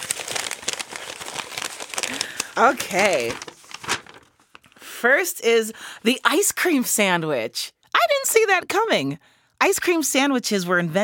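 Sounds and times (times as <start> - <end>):
paper crinkling and tearing as an envelope is opened: 0.0 - 4.8
speech: 2.6 - 3.5, 5.0 - 11.0.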